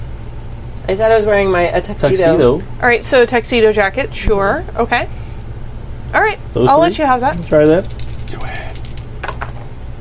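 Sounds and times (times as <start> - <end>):
low hum: 0.0 - 9.9
speech: 0.9 - 5.2, 6.1 - 8.0
dice tumbling across a hard surface: 7.3 - 9.6.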